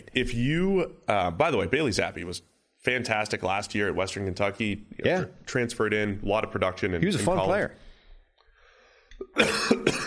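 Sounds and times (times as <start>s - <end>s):
speech: 0.2s - 7.8s, 9.2s - 10.0s
person coughing: 9.2s - 10.0s
throat clearing: 9.2s - 10.0s.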